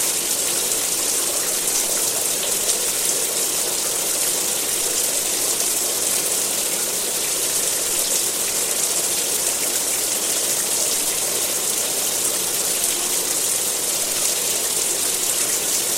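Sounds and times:
steady rainfall hissing: 0:00.0 - 0:15.9.

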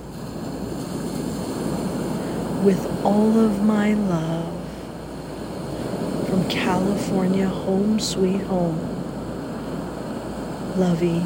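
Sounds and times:
ocean water rushing around a moving yacht: 0:00.0 - 0:11.2
speech: 0:02.6 - 0:04.4, 0:06.5 - 0:08.9, 0:10.8 - 0:11.2.

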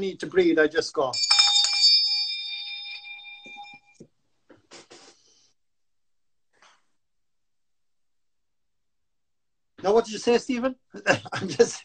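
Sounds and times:
speech: 0:00.0 - 0:01.4, 0:09.9 - 0:11.8
desk bell struck in an office as a cue to pause and breathe: 0:01.2 - 0:04.0.

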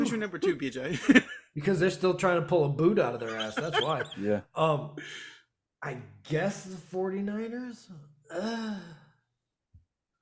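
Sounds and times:
laughter: 0:00.0 - 0:01.5, 0:03.2 - 0:04.4
speech: 0:00.0 - 0:09.0
person gasping: 0:08.3 - 0:09.1.

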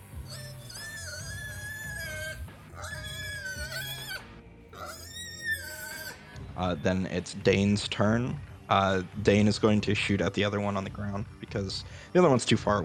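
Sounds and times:
voice imitating a squealing piglet during a game: 0:00.0 - 0:06.3
speech: 0:06.6 - 0:12.8.

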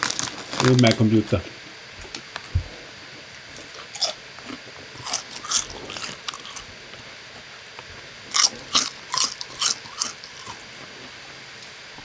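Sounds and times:
potato chips being bitten and chewed: 0:00.0 - 0:01.3, 0:03.5 - 0:07.5, 0:08.3 - 0:10.9
speech: 0:00.6 - 0:01.5.

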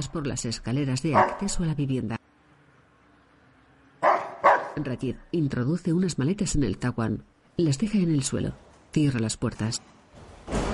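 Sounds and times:
speech: 0:00.0 - 0:02.2, 0:04.8 - 0:10.6
dog barking behind a door: 0:01.1 - 0:01.6, 0:04.0 - 0:04.8.

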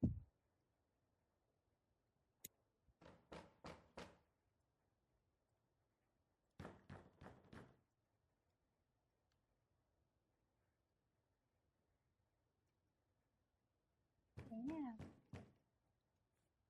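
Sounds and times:
knocking on a door: 0:03.0 - 0:04.2, 0:06.6 - 0:07.8, 0:14.4 - 0:15.6.

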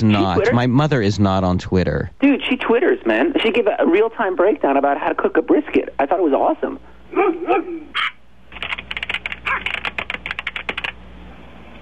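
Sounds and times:
speech: 0:00.0 - 0:08.2
dog barking: 0:07.1 - 0:08.2, 0:09.4 - 0:09.7
rapid keystrokes on a computer keyboard: 0:08.5 - 0:11.0.

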